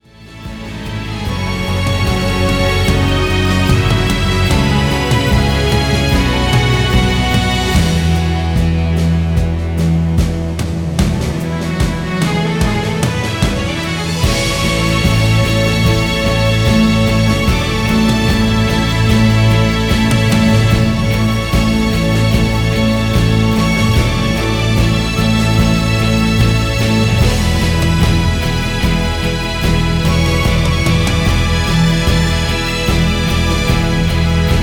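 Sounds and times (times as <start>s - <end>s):
professional instrumental soundtrack: 0.0s - 34.6s.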